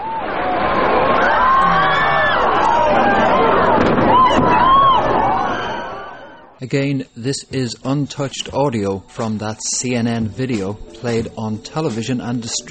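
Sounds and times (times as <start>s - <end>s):
many people screaming and shouting in panic: 0.0s - 6.6s
loud deep explosion of plane hitting building: 3.6s - 5.8s
speech: 6.6s - 12.6s.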